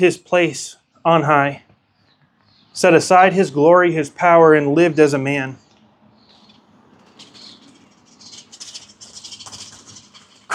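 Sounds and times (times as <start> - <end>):
speech: 0.0 - 1.7, 2.8 - 5.6
birds fighting with harsh scratchy squawks: 5.6 - 10.5
birds fluttering while fighting: 6.3 - 10.5.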